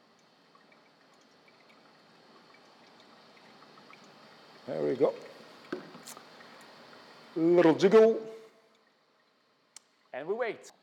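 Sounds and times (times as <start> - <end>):
water pouring onto coffee grounds in a filter: 0.0 - 10.2
speech: 4.7 - 5.3, 7.4 - 8.3, 10.2 - 10.8.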